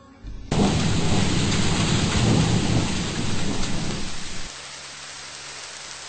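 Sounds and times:
low rumbling thunder: 0:00.3 - 0:04.5
heavy rain shower: 0:00.3 - 0:06.0.

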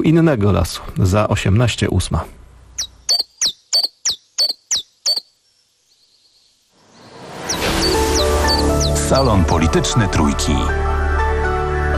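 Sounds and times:
speech: 0:00.0 - 0:02.4, 0:09.1 - 0:10.9
recorded birdsong played in a radio studio: 0:01.8 - 0:09.8.

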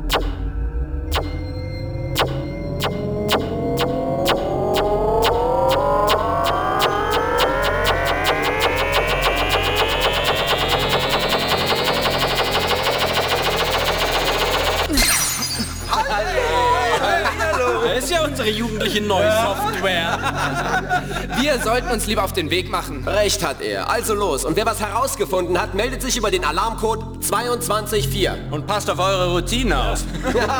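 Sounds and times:
sci-fi body scanner electronic pulses and rising sweep: 0:00.1 - 0:15.6
laughter: 0:15.6 - 0:22.3, 0:29.9 - 0:30.5
speech: 0:21.5 - 0:30.5.

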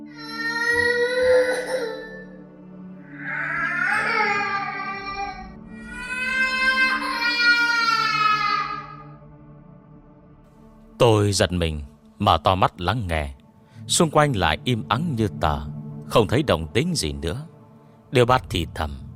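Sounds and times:
child crying outside: 0:00.1 - 0:02.4, 0:03.0 - 0:09.2
speech: 0:11.0 - 0:17.5, 0:18.1 - 0:19.0.

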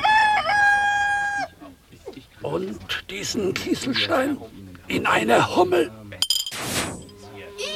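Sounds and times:
rooster crowing: 0:00.0 - 0:01.6
speech: 0:02.4 - 0:06.2.

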